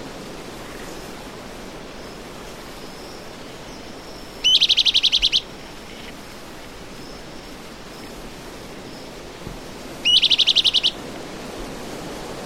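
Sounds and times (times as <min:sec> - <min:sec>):
soft background hiss: 0:00.0 - 0:12.4
Bran-colored Flycatcher subspecies auriceps chattering: 0:04.4 - 0:05.4, 0:10.0 - 0:11.0.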